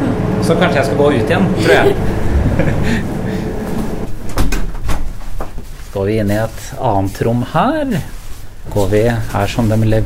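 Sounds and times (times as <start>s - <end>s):
steady hum: 0.0s - 10.0s
speech: 0.5s - 3.2s, 6.0s - 10.0s
laughter: 1.6s - 4.1s
door opening and closing: 3.6s - 5.5s.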